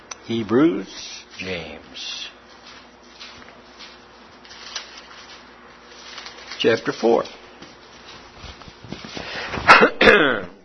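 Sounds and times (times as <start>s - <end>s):
speech: 0.3s - 2.3s, 6.6s - 7.4s
harsh coughing from a rough throat: 9.6s - 10.6s
throat clearing: 9.7s - 10.6s.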